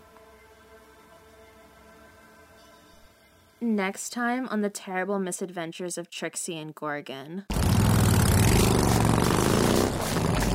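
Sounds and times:
speech: 0:03.6 - 0:07.6
motorcycle engine revving as it drives off: 0:07.5 - 0:10.5.

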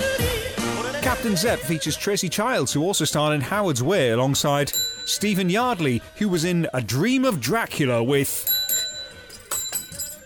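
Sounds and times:
speech: 0:01.1 - 0:08.5
small metal bell dropping off, clattering and ringing: 0:04.7 - 0:05.5, 0:08.3 - 0:10.2.

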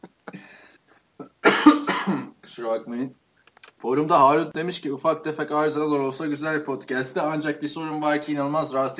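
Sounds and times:
person choking and coughing after water went down the wrong pipe: 0:00.0 - 0:00.6, 0:01.2 - 0:02.4
speech: 0:02.6 - 0:03.2, 0:03.8 - 0:08.9.

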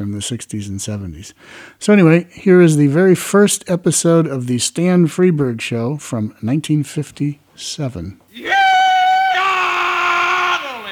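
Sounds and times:
speech: 0:00.0 - 0:08.6
loud high rebel yell: 0:08.3 - 0:10.9.

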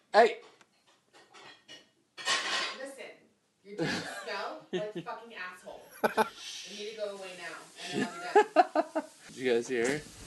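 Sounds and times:
speech: 0:00.1 - 0:00.5, 0:03.7 - 0:10.2
dishes and cutlery clattering while being washed: 0:00.4 - 0:02.8
laughter: 0:06.0 - 0:06.3, 0:07.8 - 0:09.1.

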